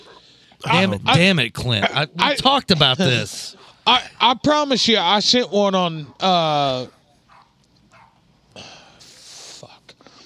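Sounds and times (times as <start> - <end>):
speech: 0.6 - 7.0
dogs barking: 6.0 - 8.3.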